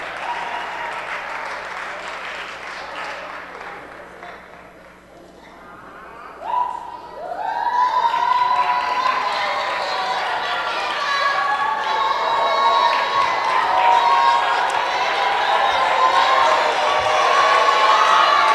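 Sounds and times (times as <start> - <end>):
crowd cheering and whooping: 0.0 - 1.9, 6.4 - 18.5
audience applauding: 0.0 - 4.9, 7.7 - 18.5.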